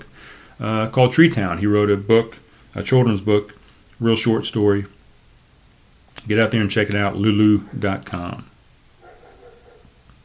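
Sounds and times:
steady hum: 0.0 - 10.2
speech: 0.6 - 5.0, 6.2 - 8.5
faint dogs barking: 7.3 - 10.0.

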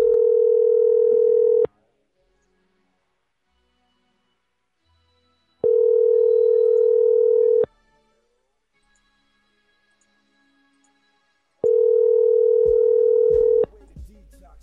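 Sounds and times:
telephone ringback tone on an outgoing call: 0.0 - 1.7, 5.6 - 7.7, 11.6 - 13.6.

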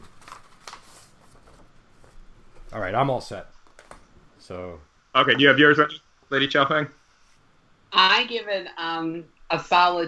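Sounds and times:
paper sheets rustling and crackling while being shuffled: 0.0 - 2.8
speech: 2.7 - 3.6, 4.5 - 7.0, 7.9 - 10.0.

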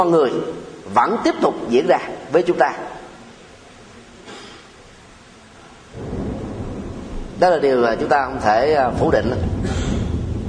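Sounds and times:
speech: 0.0 - 2.9, 7.4 - 9.5
deep rumble of thunder: 5.9 - 10.4
heavy rain in a rainstorm: 5.9 - 10.4.

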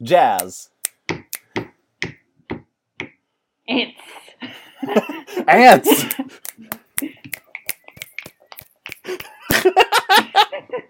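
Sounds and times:
speech: 0.0 - 0.7, 3.7 - 7.2, 9.1 - 10.8
laughter: 4.4 - 6.3, 9.2 - 10.8
sharp finger snaps: 6.4 - 9.3.

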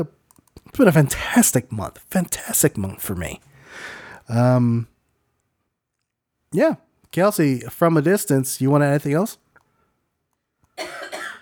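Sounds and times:
speech: 0.8 - 4.9, 6.5 - 9.4
short intake of breath: 3.5 - 4.3
person coughing harshly: 10.8 - 11.4.

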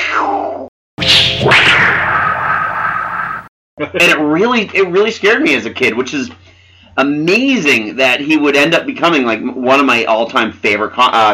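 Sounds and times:
voice imitating a web-shooting thwip: 1.0 - 3.5
speech: 3.8 - 6.4, 7.0 - 11.3.

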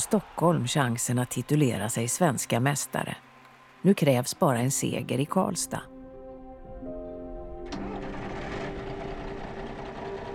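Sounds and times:
speech: 0.0 - 5.9
old rusty former public transport bus engine starting: 7.6 - 10.3.

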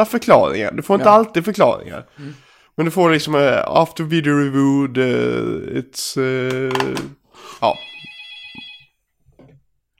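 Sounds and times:
speech: 0.0 - 7.9
old landline home telephone ringing with electronic trill: 7.6 - 9.0.

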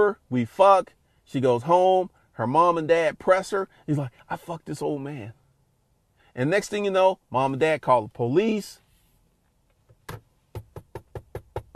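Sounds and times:
speech: 0.0 - 5.4, 6.4 - 8.8, 10.1 - 10.3
knocking on a door: 10.0 - 11.7.

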